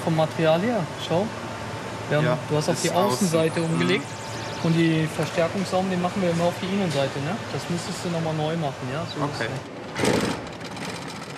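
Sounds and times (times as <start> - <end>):
speech: 0.0 - 1.5, 2.1 - 10.2
industrial sewing machine stitching tarpaulin: 9.9 - 11.3.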